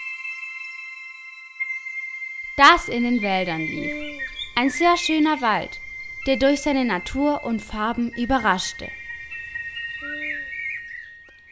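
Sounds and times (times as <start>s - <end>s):
woodland ambience: 0.0s - 11.5s
birds singing in a forest: 2.5s - 11.5s
speech: 2.6s - 9.0s.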